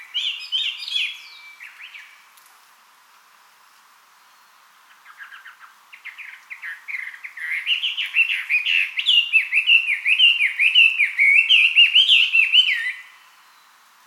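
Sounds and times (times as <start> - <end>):
Chinese hwamei singing looping slurred whistles: 0.0 - 2.2, 5.1 - 13.7.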